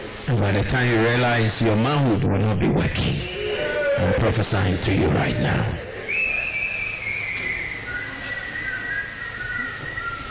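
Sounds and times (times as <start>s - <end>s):
soft noisy hum: 0.0s - 10.2s
speech: 0.3s - 3.4s, 4.0s - 5.8s
sustained wavering whistle: 3.2s - 4.0s, 6.0s - 10.2s.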